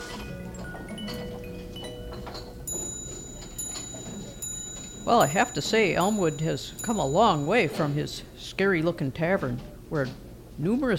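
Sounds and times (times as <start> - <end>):
1820s musical clock playing a tinkling melody: 0.0 - 8.3
speech: 5.1 - 10.9.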